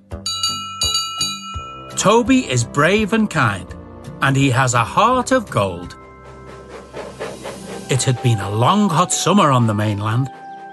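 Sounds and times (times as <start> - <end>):
bright metallic bell on a small boxy steam tram engine ringing: 0.3 - 2.2
speech: 2.0 - 6.0, 7.9 - 10.4.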